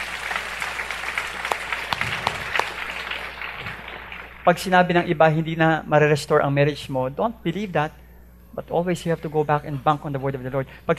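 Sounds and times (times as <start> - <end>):
sharp loud claps: 0.0 - 4.7
church congregation applauding at a service: 0.0 - 5.1
speech: 4.5 - 8.0, 8.6 - 10.9.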